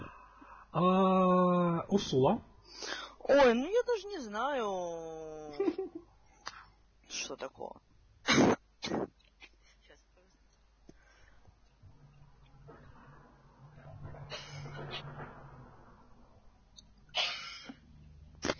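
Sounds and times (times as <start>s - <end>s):
speech: 0.7s - 6.1s, 7.1s - 7.8s
coughing: 8.2s - 9.3s, 17.1s - 17.8s.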